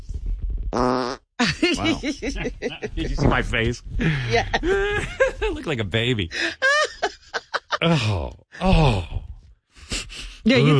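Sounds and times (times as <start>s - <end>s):
loud buzzy fart with low rumbling: 0.6s - 1.3s
laughter: 1.4s - 8.3s
person making animated vocal sounds: 1.8s - 4.9s, 7.8s - 9.3s, 10.4s - 10.7s
speech: 1.8s - 6.7s, 7.8s - 9.2s, 10.4s - 10.7s.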